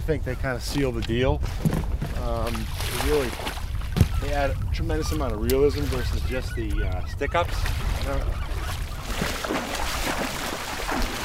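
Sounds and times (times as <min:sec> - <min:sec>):
steady noisy outdoor background: 0:00.0 - 0:11.2
speech: 0:00.1 - 0:03.6, 0:04.2 - 0:08.5
water splashing on a river as goose decoys are set out from a boat: 0:01.5 - 0:11.2
faint goose honks: 0:04.0 - 0:09.4.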